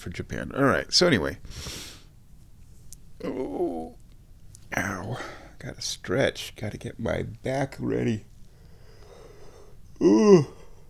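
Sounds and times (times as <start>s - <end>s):
speech: 0.0s - 1.9s, 3.2s - 4.0s, 4.7s - 8.3s, 10.0s - 10.6s
person yawning: 3.2s - 4.0s, 10.0s - 10.8s.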